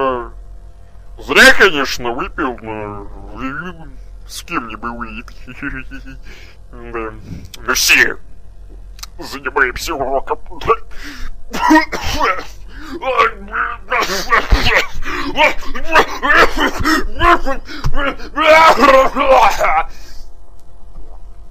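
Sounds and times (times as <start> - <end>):
speech: 1.3 - 8.3, 9.2 - 20.0
laughter: 5.3 - 6.3, 11.6 - 19.7
person coughing and clearing their throat: 11.5 - 13.0, 13.9 - 18.2.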